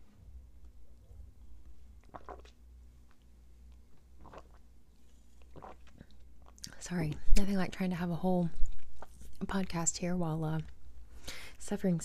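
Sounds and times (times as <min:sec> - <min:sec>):
low steady hum: 0:00.0 - 0:12.0
slurping sips from an energy drink: 0:02.1 - 0:02.6, 0:04.2 - 0:06.2
speech: 0:06.9 - 0:08.7, 0:09.4 - 0:10.8, 0:11.7 - 0:12.0.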